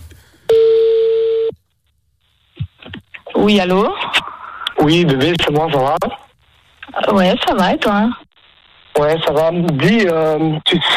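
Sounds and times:
telephone tone while a call is placed: 0.5 - 1.5
speech: 3.4 - 4.0, 4.8 - 6.2, 7.0 - 8.2, 9.0 - 10.9.

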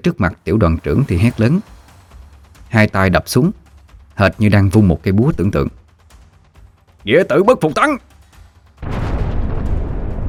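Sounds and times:
speech: 0.0 - 1.8, 2.7 - 3.6, 4.2 - 5.8, 7.0 - 8.1
explosion with loud heavy rumbling roar: 8.8 - 10.2.

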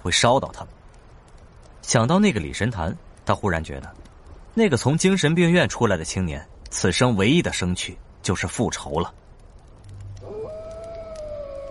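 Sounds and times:
speech: 0.0 - 0.8, 1.8 - 4.0, 4.6 - 9.2
faint low hiss: 0.0 - 11.7
wolf howling in open wilderness: 9.8 - 11.7.

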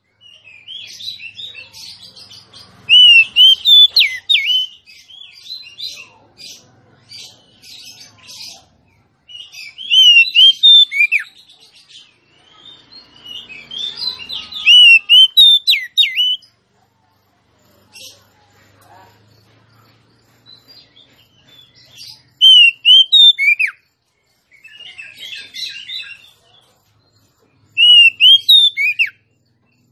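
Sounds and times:
female Oriental magpie-robin singing rich whistled notes: 2.9 - 4.8, 9.8 - 11.3, 14.6 - 16.4, 22.4 - 23.8, 27.8 - 29.2.

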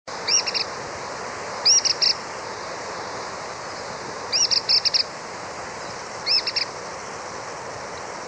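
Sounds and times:
soft steady background hiss: 0.1 - 8.2
Cliff Flycatcher Hirundinea ferruginea sclateri giving sharp high double and triple notes: 0.2 - 0.8, 1.6 - 2.3, 4.3 - 5.2, 5.9 - 6.8.

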